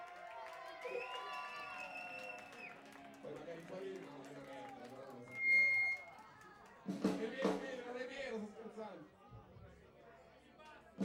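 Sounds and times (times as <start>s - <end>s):
audience cheering and whooping: 0.0s - 2.8s
light audience clapping: 0.0s - 5.3s
speech: 0.8s - 1.6s, 3.3s - 5.4s, 6.9s - 9.2s.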